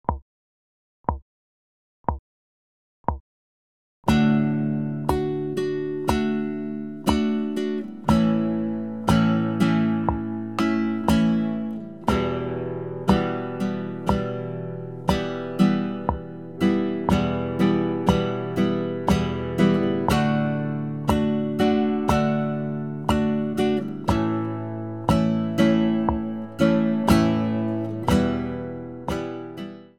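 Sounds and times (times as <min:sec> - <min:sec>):
strumming: 0:04.1 - 0:29.9.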